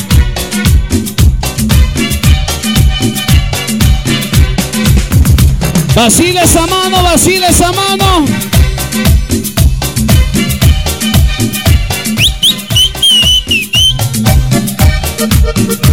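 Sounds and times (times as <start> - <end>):
loud dance track with a steady driving beat: 0.0 - 15.9
speech: 6.0 - 9.1
people whistling: 12.1 - 14.2.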